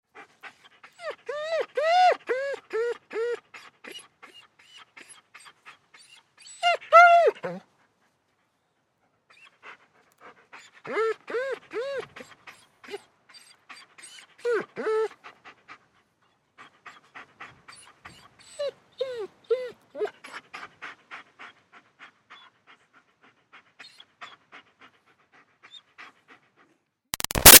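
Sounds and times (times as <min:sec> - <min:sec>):
German Shepherd dog panting: 0:00.1 - 0:06.4, 0:07.4 - 0:27.0
German Shepherd dog whining: 0:00.9 - 0:05.2, 0:06.0 - 0:07.6, 0:10.6 - 0:15.2, 0:17.7 - 0:20.4.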